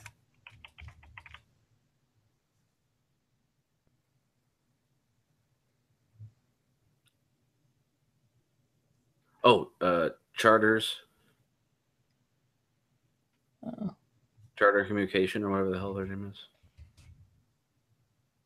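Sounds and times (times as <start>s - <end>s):
typing a web search on a computer keyboard: 0.0s - 1.5s
speech: 9.4s - 11.0s, 14.6s - 16.5s.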